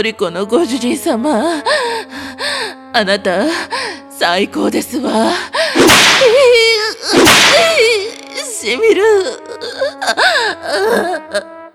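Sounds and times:
speech: 0.0s - 2.2s, 2.9s - 6.0s, 8.6s - 11.5s
whip cracks: 5.8s - 6.4s, 7.2s - 7.9s.

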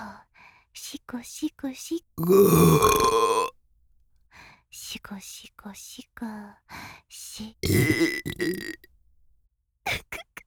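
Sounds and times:
speech: 0.8s - 3.4s, 5.0s - 8.9s, 9.8s - 10.3s
loud low voiced burp: 2.2s - 3.5s, 7.6s - 8.8s.

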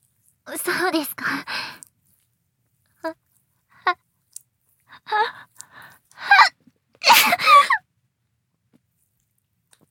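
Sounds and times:
speech: 0.5s - 1.7s
sharp sneeze: 6.3s - 7.8s.

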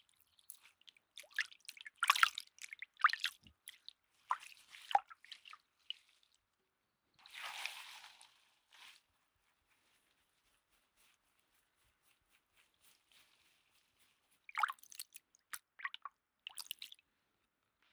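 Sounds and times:
warm rinse water splashing and dripping: 1.2s - 5.6s, 14.5s - 17.0s.

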